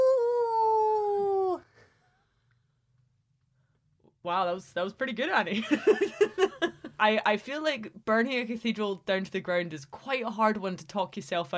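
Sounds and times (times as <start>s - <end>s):
person imitating a wolf howl: 0.0s - 1.6s
speech: 4.3s - 11.5s.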